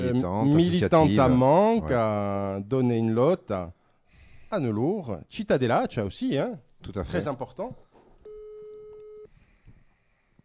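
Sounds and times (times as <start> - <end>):
speech: 0.1 - 3.8, 4.5 - 7.8
telephone electronic ringing tone: 8.3 - 9.3.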